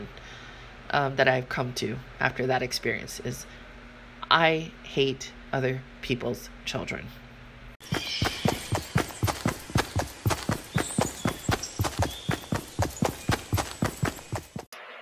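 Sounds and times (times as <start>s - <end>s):
speech: 0.9s - 3.6s, 4.3s - 7.2s, 7.8s - 8.3s
horse hooves clip-clopping at a trotting pace: 7.8s - 14.7s.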